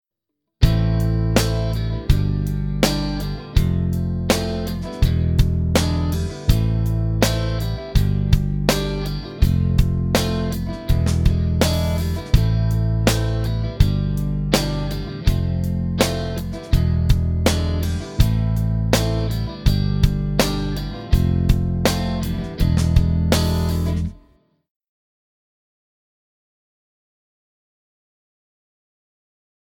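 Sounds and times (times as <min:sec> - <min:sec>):
minor key chord progression with major V7: 0:00.6 - 0:24.3.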